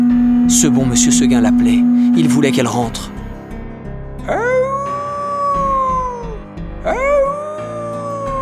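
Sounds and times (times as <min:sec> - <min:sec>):
speech: 0:00.5 - 0:03.2
wolf howling: 0:04.3 - 0:08.3.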